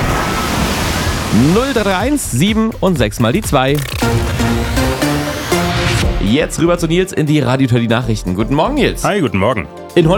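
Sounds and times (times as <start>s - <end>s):
rushing wash of water: 0.0s - 2.2s
speech: 1.3s - 5.4s, 6.2s - 10.1s.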